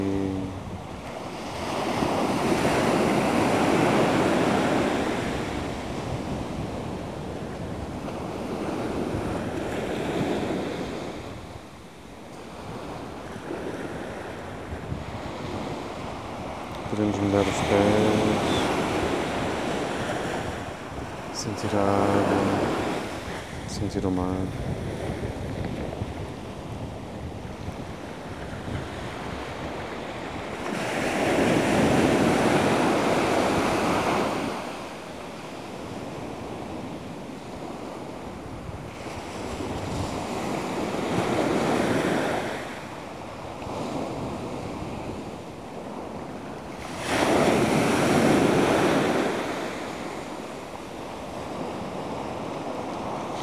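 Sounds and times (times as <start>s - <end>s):
ocean waves breaking on a beach: 0.0s - 53.4s
speech: 21.6s - 22.5s, 23.8s - 24.9s.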